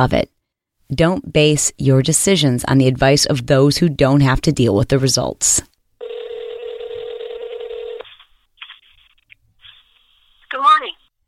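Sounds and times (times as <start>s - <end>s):
speech: 0.0s - 0.3s, 0.9s - 5.7s
steady telephone tone: 6.0s - 8.1s.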